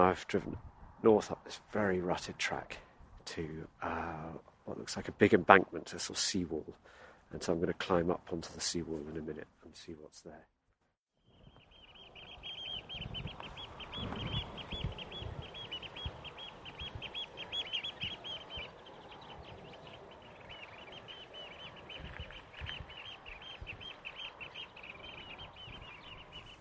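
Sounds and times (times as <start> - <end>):
speech: 0.0 - 10.5
steady wind: 0.0 - 26.5
oystercatchers calling over estuary: 11.3 - 26.5.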